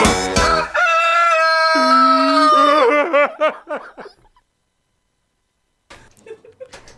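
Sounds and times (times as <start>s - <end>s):
rooster crowing cock-a-doodle-doo: 0.6s - 3.4s
laughter: 2.4s - 4.4s.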